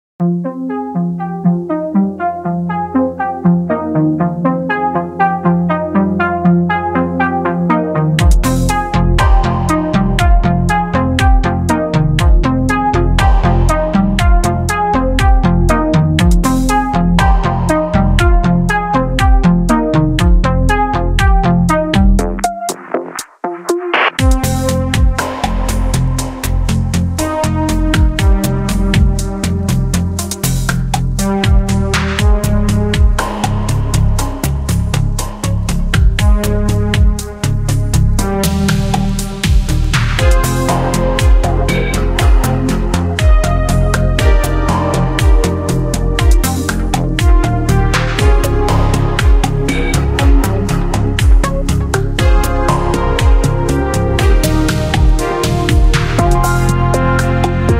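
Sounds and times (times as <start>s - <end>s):
ambient music: 0.2s - 57.7s.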